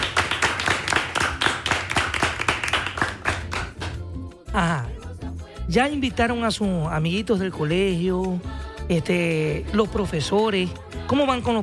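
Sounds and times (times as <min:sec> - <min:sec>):
group applauding: 0:00.0 - 0:04.1
speech: 0:04.6 - 0:04.9, 0:05.7 - 0:11.6.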